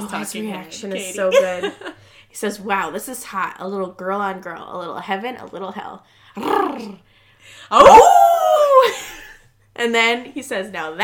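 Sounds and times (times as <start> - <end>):
speech: 0.0 - 9.0, 9.8 - 11.0
man howling like a wolf: 7.8 - 8.9.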